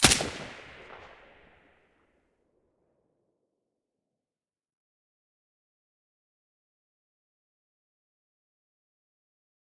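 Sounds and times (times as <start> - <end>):
silenced gunshot: 0.0 - 1.6.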